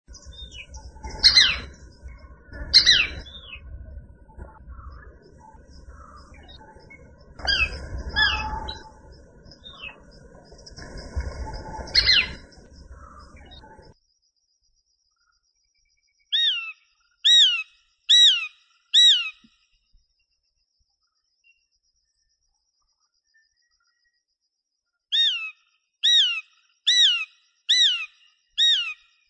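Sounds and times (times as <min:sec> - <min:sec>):
birds: 0:00.0 - 0:14.0, 0:15.1 - 0:29.2
shikra calling: 0:00.1 - 0:14.0.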